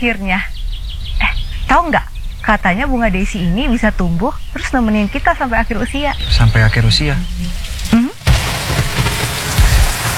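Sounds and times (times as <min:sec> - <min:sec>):
speech: 0:00.0 - 0:00.6, 0:01.7 - 0:07.7
low rumbles: 0:00.0 - 0:10.1
steady rain: 0:00.0 - 0:10.1
voice-like tone: 0:07.2 - 0:08.2.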